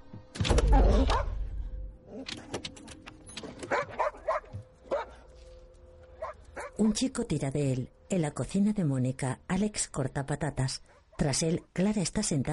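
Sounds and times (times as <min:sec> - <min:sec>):
dog barking, yipping and whimpering at a car window: 0:00.8 - 0:01.4, 0:03.5 - 0:05.3, 0:06.2 - 0:06.8
speech: 0:01.0 - 0:01.3, 0:06.8 - 0:12.5.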